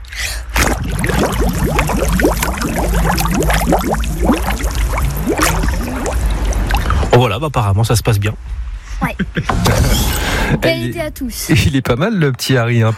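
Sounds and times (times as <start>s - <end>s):
water splash: 0.4s - 7.2s
bubbles blown underwater in a swimming pool: 0.5s - 7.1s
speech: 7.4s - 12.9s.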